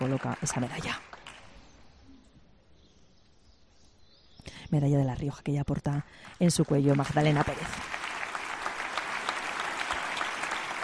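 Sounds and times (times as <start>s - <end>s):
audience applause at a ceremony awarding the Medal of La Rioja: 0.0s - 1.5s, 6.5s - 10.8s
speech: 0.2s - 1.2s, 4.7s - 7.9s.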